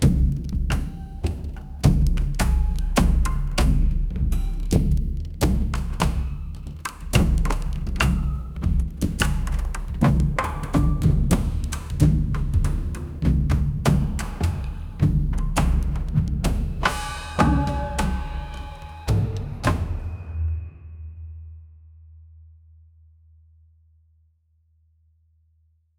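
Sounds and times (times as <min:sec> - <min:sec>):
rhythmic deep organic drums: 0:00.0 - 0:20.4.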